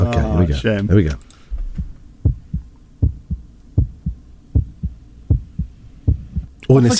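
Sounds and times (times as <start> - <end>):
speech: 0.1 - 1.3, 6.7 - 6.9
heartbeat: 1.6 - 6.6.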